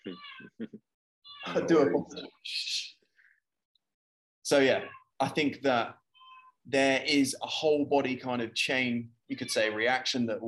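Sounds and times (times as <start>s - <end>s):
cat meowing: 0.1s - 0.6s, 1.3s - 1.9s, 4.6s - 5.1s, 6.2s - 6.6s
speech: 1.6s - 2.7s, 4.5s - 6.0s, 6.6s - 10.4s.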